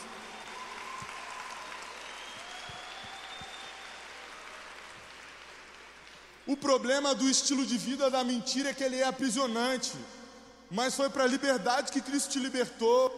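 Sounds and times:
congregation applauding: 0.0s - 6.8s
speech: 6.5s - 13.1s.

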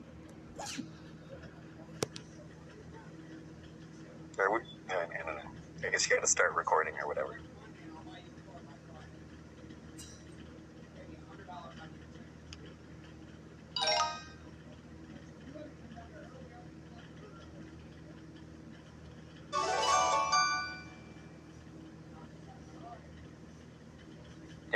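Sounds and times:
steady low hum: 0.0s - 24.7s
speech: 4.4s - 5.1s, 5.8s - 7.5s
short bright chiming jingle from a math website: 13.8s - 14.4s, 19.6s - 21.1s.

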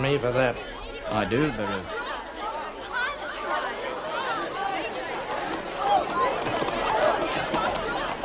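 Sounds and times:
dense crowd chatter and hubbub: 0.0s - 8.2s
speech: 0.1s - 2.0s.

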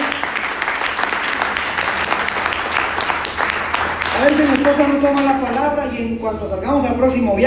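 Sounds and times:
audience applauding: 0.0s - 5.9s
speech: 4.2s - 7.4s.

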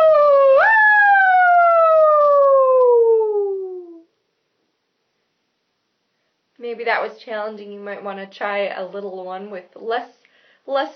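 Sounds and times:
vocal wail imitating an ambulance siren: 0.0s - 4.1s
speech: 6.7s - 10.9s.

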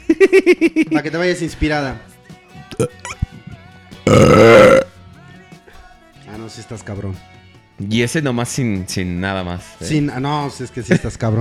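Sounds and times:
laughter: 0.0s - 1.0s
speech: 0.2s - 2.1s, 2.8s - 3.2s, 4.1s - 4.8s, 6.5s - 11.3s
person burping: 2.6s - 3.3s, 4.1s - 4.9s.

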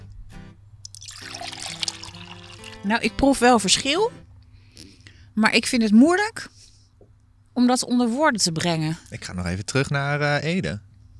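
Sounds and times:
bottle cap twisting open: 0.9s - 2.8s
water pouring into a glass: 0.9s - 2.9s
speech: 2.8s - 4.3s, 5.4s - 6.6s, 7.6s - 10.9s.

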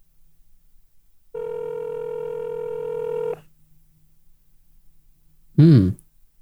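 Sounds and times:
telephone line ringing tone: 1.4s - 3.4s.

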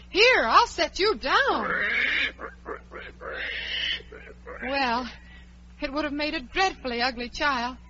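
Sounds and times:
faint steady hum: 0.0s - 7.8s
speech: 0.4s - 2.0s, 4.6s - 5.2s, 5.8s - 7.8s
pig oinking: 1.5s - 4.9s.

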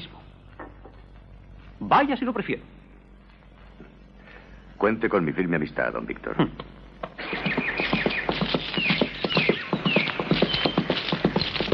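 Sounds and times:
speech: 1.8s - 2.8s, 4.8s - 6.7s
horse hooves clip-clopping along a tree-lined country path: 7.1s - 11.7s.

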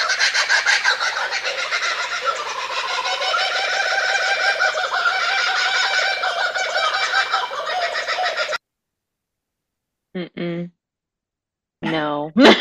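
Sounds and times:
laughing kookaburras cackling in an overlapping chorus: 0.0s - 8.6s
person speaking: 10.2s - 10.7s, 11.8s - 12.5s.

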